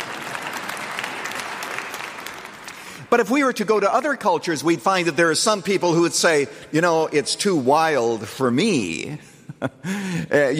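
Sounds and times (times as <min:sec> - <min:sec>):
church congregation clapping during worship: 0:00.0 - 0:05.1
speech: 0:03.1 - 0:10.5.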